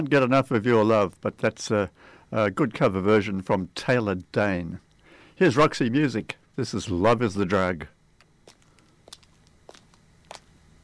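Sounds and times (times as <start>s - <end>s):
speech: 0.0s - 8.0s
low steady hum: 0.0s - 10.8s
footsteps on a hard surface: 8.4s - 10.8s.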